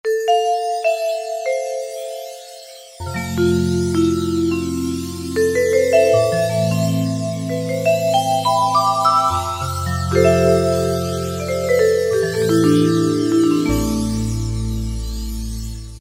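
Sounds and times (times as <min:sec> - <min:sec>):
synthesizer factory preset: 0:00.1 - 0:15.9.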